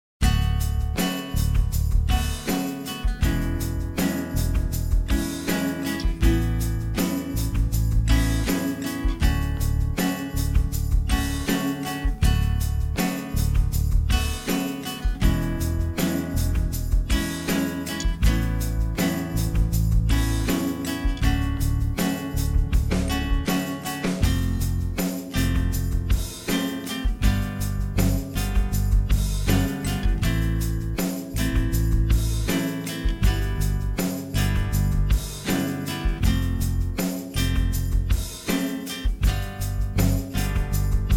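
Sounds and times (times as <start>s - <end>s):
guitar study piece at 80bpm: 0.2s - 41.1s.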